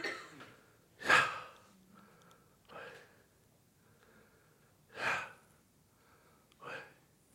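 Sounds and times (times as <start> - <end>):
person breathing deliberately and audibly demonstrating a name: 1.4 - 7.0.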